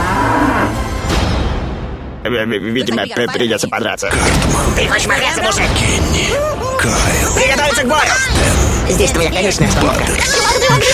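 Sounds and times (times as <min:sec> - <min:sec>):
zombie cows mooing in a video game: 0:00.0 - 0:00.8
speech: 0:02.3 - 0:10.9
laughter: 0:02.6 - 0:04.1, 0:04.8 - 0:10.9.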